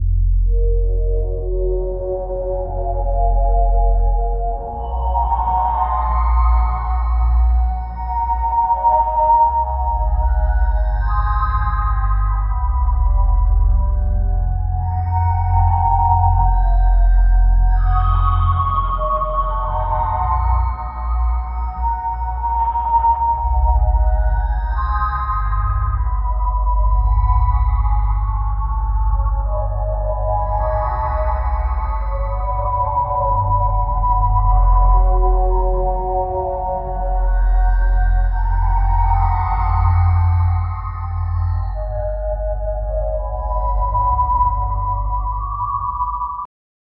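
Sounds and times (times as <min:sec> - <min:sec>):
horror game ambient music loop: 0:00.0 - 0:46.4.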